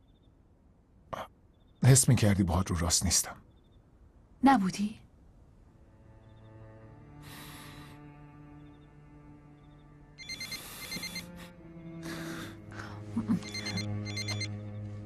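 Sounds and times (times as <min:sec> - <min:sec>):
low sustained tones: 0:00.0 - 0:15.0
speech: 0:01.8 - 0:03.5, 0:04.4 - 0:05.0
telephone ringing: 0:10.2 - 0:11.3, 0:13.4 - 0:14.5.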